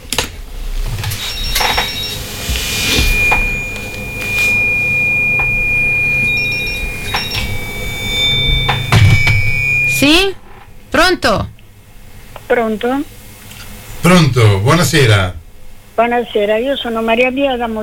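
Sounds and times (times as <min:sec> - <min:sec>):
telephone line electronic ringing tone: 0:01.2 - 0:10.2
speech: 0:11.1 - 0:11.5, 0:12.5 - 0:13.2, 0:14.0 - 0:15.4, 0:16.0 - 0:17.8.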